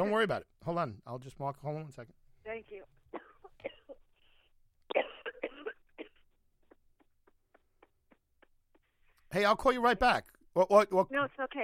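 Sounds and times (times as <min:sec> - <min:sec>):
speech: 0:00.0 - 0:03.8, 0:09.3 - 0:11.6
person coughing: 0:03.1 - 0:04.2, 0:04.9 - 0:08.5.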